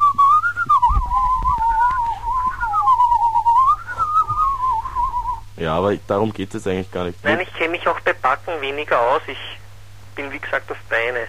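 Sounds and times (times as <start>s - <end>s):
person whistling a slow melody in two-part whistling: 0.0s - 5.5s
speech: 5.7s - 9.6s, 10.2s - 11.2s.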